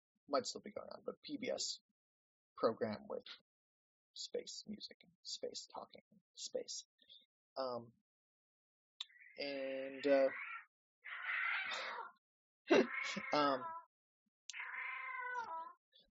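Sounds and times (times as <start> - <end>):
speech: 0.3 - 1.9, 2.6 - 3.5, 4.2 - 8.0, 9.4 - 10.5, 12.7 - 13.8
cat yowling: 10.3 - 12.1, 12.7 - 13.8, 14.5 - 15.8.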